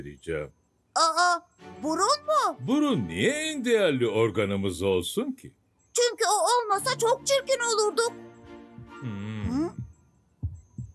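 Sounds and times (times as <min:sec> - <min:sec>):
speech: 0:00.0 - 0:08.3, 0:09.0 - 0:09.8
heartbeat: 0:08.8 - 0:10.9
drawn-out vocal sound: 0:09.0 - 0:09.7.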